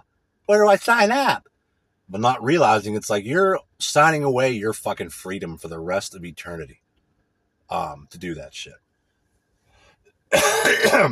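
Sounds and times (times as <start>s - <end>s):
speech: 0.5s - 1.5s, 2.1s - 6.8s, 7.7s - 8.8s, 10.3s - 11.1s
throat clearing with a rough cough: 10.3s - 11.1s.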